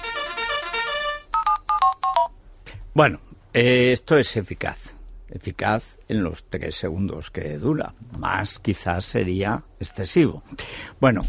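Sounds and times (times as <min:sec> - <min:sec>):
electronic jingle of a company's direct telephone line: 0:00.0 - 0:02.3
speech: 0:03.0 - 0:11.2.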